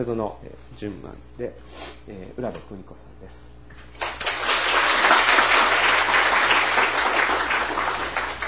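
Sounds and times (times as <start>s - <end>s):
speech: 0.0s - 4.0s
people at a church service clapping to welcome newly baptized people: 4.0s - 8.4s.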